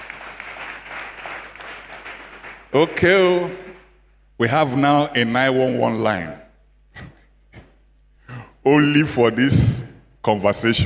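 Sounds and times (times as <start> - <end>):
audience clapping: 0.0 - 3.9
speech: 2.7 - 3.6, 4.4 - 6.4, 8.7 - 10.8.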